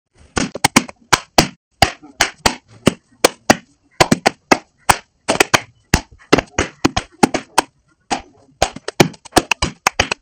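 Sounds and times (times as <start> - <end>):
horse hooves tapping fast: 2.2 - 10.2.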